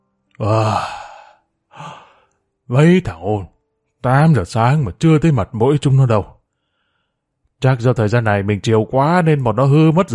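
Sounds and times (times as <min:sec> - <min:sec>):
speech: 0:00.4 - 0:01.0, 0:02.7 - 0:06.4, 0:07.6 - 0:10.1
long voiced yawn while stretching: 0:00.4 - 0:02.3
shorter softer breathy exhale: 0:00.4 - 0:02.4, 0:06.6 - 0:07.2.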